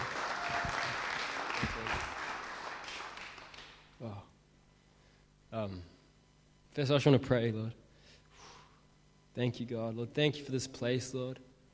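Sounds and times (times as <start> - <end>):
crowd applauding for a speaker: 0.0 - 3.9
speech: 5.6 - 6.0, 6.8 - 7.8, 9.4 - 11.5.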